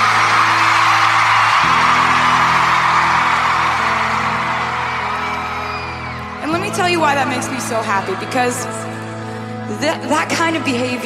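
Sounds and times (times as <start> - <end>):
concert crowd screaming and cheering: 0.0 - 11.0
speech: 7.0 - 9.0, 9.7 - 11.0.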